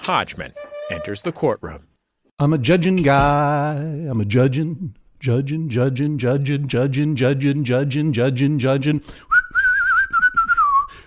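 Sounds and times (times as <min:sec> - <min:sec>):
speech: 0:00.0 - 0:09.3
whistled melody: 0:09.3 - 0:11.0.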